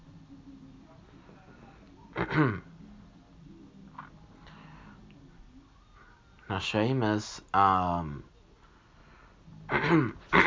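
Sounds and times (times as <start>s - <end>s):
person clearing throat: 2.2s - 2.7s, 9.7s - 10.4s
speech: 2.4s - 2.7s, 6.6s - 8.3s, 9.9s - 10.4s.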